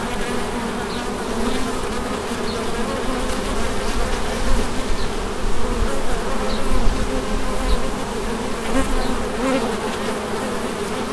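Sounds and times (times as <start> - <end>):
bees buzzing at St Bonnet in France: 0.0 - 11.1.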